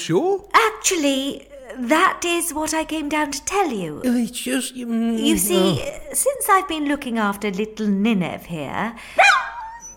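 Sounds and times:
speech: 0:00.0 - 0:09.5
small dog giving a sharp high-pitched yap: 0:09.2 - 0:09.9.

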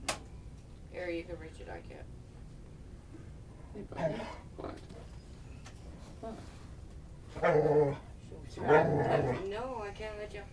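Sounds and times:
speech: 0:01.0 - 0:02.3, 0:03.8 - 0:05.1, 0:06.2 - 0:06.6, 0:07.3 - 0:10.5
faint murmuring background: 0:03.8 - 0:05.2, 0:07.4 - 0:10.4
puppy growling and yapping: 0:07.3 - 0:08.0, 0:08.6 - 0:09.4.

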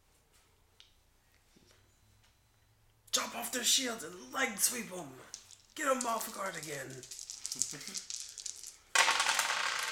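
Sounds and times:
speech: 0:03.4 - 0:08.1
dice rolling on a table: 0:05.2 - 0:09.9.

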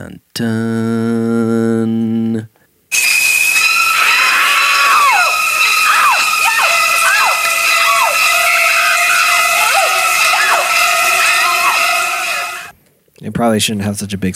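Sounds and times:
speech: 0:00.0 - 0:02.5, 0:13.4 - 0:14.3
shrill screeching violins in horror film music: 0:02.9 - 0:12.7.

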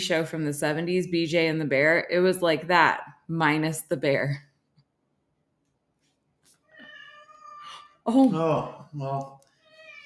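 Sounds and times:
speech: 0:00.0 - 0:04.5, 0:08.0 - 0:09.4
small orange male domestic cat meowing: 0:06.6 - 0:08.0, 0:09.6 - 0:10.0.

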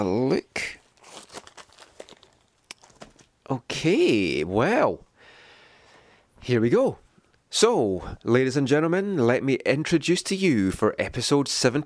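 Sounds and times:
paper envelopes rustling as they are shuffled: 0:00.8 - 0:03.4
speech: 0:03.5 - 0:05.1, 0:06.4 - 0:11.8.

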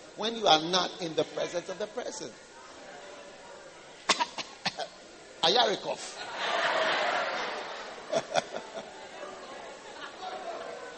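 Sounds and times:
speech: 0:00.2 - 0:02.5, 0:05.5 - 0:06.3, 0:08.2 - 0:09.0
person faking short forced coughs: 0:04.1 - 0:04.9
laughter: 0:06.1 - 0:10.9.

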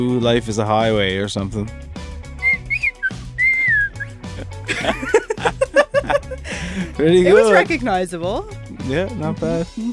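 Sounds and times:
speech: 0:00.0 - 0:01.9, 0:04.8 - 0:05.2, 0:06.8 - 0:09.9
person whistling a song melody: 0:02.4 - 0:04.1
person chuckling and giggling: 0:04.4 - 0:06.9.

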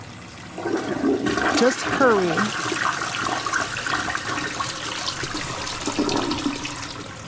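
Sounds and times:
toilet flushing: 0:00.0 - 0:07.2
speech: 0:01.6 - 0:02.8.

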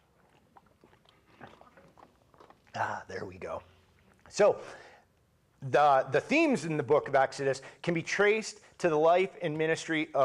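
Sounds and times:
wet mouth clicks: 0:00.0 - 0:02.9
gentle swallow: 0:00.0 - 0:03.1
soft slurps sipping from a drink: 0:00.0 - 0:05.3
speech: 0:02.8 - 0:03.7, 0:04.3 - 0:04.9, 0:05.6 - 0:10.2.

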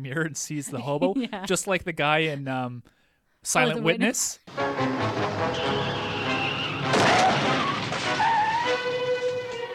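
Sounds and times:
speech: 0:00.0 - 0:06.1
loud car crash: 0:04.5 - 0:09.7
car tires squealing in a skid: 0:05.2 - 0:09.7
scraping and rattling debris from a car crash: 0:06.9 - 0:09.7.

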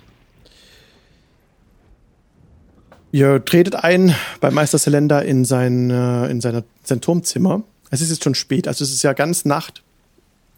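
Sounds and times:
low rolling thunder at night over a castle: 0:00.0 - 0:05.4
constant hiss of rain at night over a castle: 0:00.0 - 0:10.5
speech: 0:03.1 - 0:09.9.

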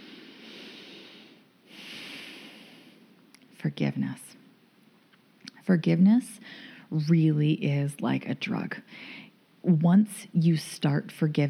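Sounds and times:
deep breath in and out: 0:00.0 - 0:03.2, 0:06.4 - 0:06.9, 0:08.9 - 0:09.4
speech: 0:03.6 - 0:04.4, 0:05.6 - 0:11.4.

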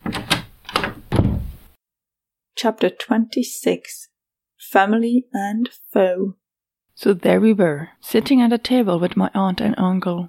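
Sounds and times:
metallic door knob turning with clicks and rattles: 0:00.0 - 0:01.5
door swinging open: 0:00.0 - 0:01.7
speech: 0:02.6 - 0:06.4, 0:07.0 - 0:10.2.

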